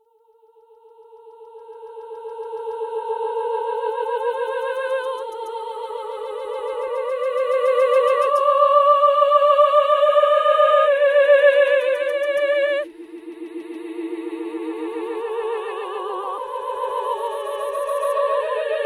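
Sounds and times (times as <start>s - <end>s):
opera singing with delay effect: 0.7s - 18.8s.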